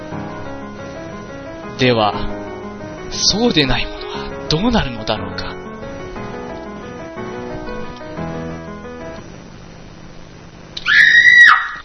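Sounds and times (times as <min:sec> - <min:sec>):
soft tonal music: 0:00.0 - 0:09.8
speech: 0:01.8 - 0:02.4, 0:03.1 - 0:05.6
girl screaming: 0:10.8 - 0:11.8.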